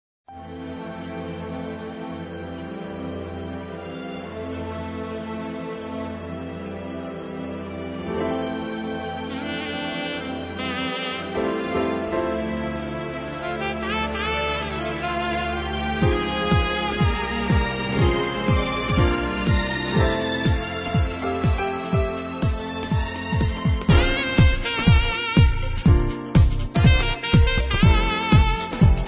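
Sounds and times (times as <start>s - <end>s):
disco music with saxophone: 9.2s - 29.0s.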